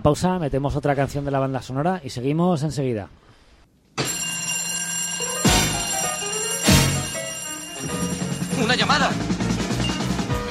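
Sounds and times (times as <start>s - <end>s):
speech: 0.0s - 3.2s, 8.6s - 9.3s
telephone bell ringing: 4.0s - 10.2s.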